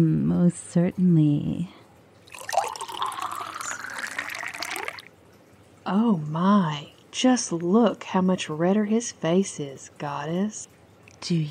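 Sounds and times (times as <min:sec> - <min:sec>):
speech: 0:00.0 - 0:01.8, 0:05.8 - 0:11.4
wine pouring into a glass: 0:02.2 - 0:05.1.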